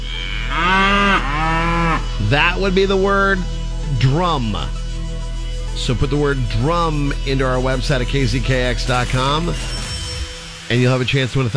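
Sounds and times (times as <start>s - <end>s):
cow mooing: 0.0s - 3.1s
speech: 2.3s - 4.8s, 5.8s - 9.8s, 10.7s - 11.5s.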